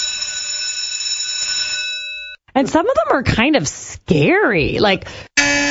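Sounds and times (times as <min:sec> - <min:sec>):
electric school recess bell ringing: 0:00.0 - 0:02.4
speech: 0:02.6 - 0:05.6.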